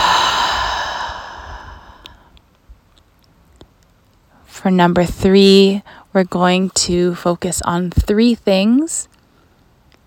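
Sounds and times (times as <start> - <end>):
long breathy exhale during a mindfulness breathing exercise: 0.0 - 2.3
speech: 4.6 - 9.1.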